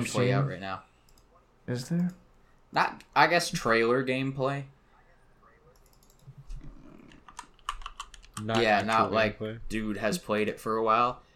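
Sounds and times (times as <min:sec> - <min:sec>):
speech: 0:00.0 - 0:00.9, 0:01.7 - 0:04.8, 0:08.4 - 0:11.2
typing on a computer keyboard: 0:05.8 - 0:06.2, 0:07.1 - 0:08.6.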